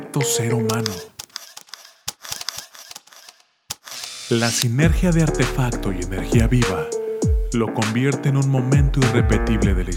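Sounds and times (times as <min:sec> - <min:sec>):
speech: 0:00.2 - 0:01.1, 0:04.3 - 0:09.9
crisp mechanical camera shutter clicks: 0:00.7 - 0:04.7.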